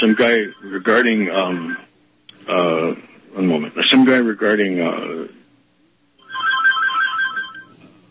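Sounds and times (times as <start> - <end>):
speech: 0.0 - 5.4
phone playing a bright warbling ringtone: 6.2 - 7.8.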